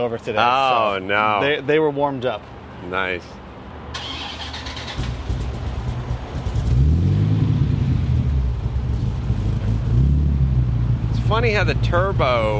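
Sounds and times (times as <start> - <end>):
speech: 0.0 - 3.4, 11.3 - 12.5
V10 supercar engine starting and idling: 3.9 - 12.5.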